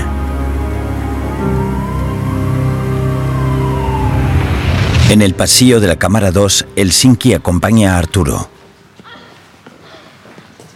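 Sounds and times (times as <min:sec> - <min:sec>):
ambulance siren wailing: 0:00.0 - 0:05.8
low vehicle rumble: 0:01.0 - 0:05.2
speech: 0:05.1 - 0:08.6.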